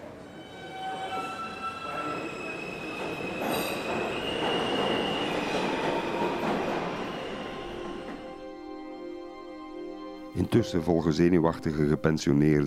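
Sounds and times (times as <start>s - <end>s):
subway train rolling along at speed: 0.0s - 10.3s
speech: 10.4s - 12.6s.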